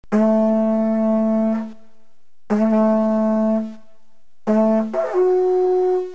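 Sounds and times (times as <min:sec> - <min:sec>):
didgeridoo playing rhythmically: 0:00.1 - 0:01.8, 0:02.5 - 0:03.8, 0:04.4 - 0:06.1
trumpet playing rhythmically: 0:00.1 - 0:01.9, 0:02.5 - 0:06.1.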